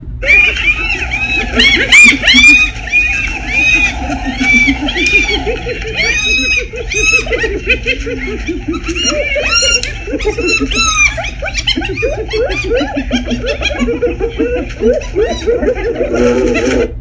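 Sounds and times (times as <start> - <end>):
hyenas laughing: 0.0 - 17.0.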